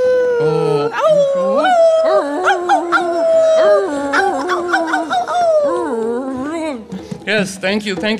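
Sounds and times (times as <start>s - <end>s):
speech: 0.4s - 1.7s, 7.4s - 8.1s
chorus of coyotes howling and yipping: 1.0s - 6.0s.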